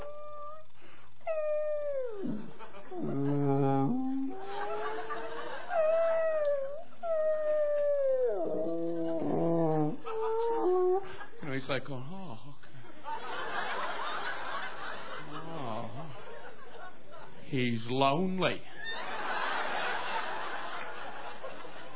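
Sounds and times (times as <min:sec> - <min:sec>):
whale calls: 0:01.3 - 0:11.1
laughter: 0:02.5 - 0:06.2, 0:12.9 - 0:17.5, 0:18.8 - 0:21.9
low pulsing whale grunts: 0:02.9 - 0:05.3
speech: 0:17.9 - 0:18.7.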